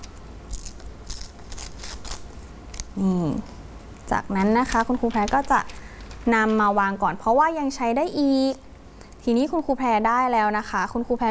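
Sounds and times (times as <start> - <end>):
glossy yellow magazine page torn by hand: 0.5 - 2.9
speech: 3.0 - 8.6, 9.2 - 11.3.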